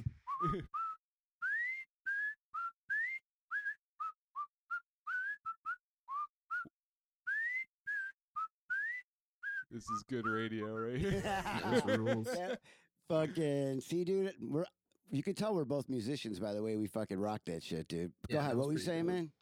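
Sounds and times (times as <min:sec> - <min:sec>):
person whistling a TV show theme tune: 0:00.0 - 0:11.1
speech: 0:00.4 - 0:00.8, 0:09.7 - 0:19.4
laughter: 0:10.6 - 0:13.4.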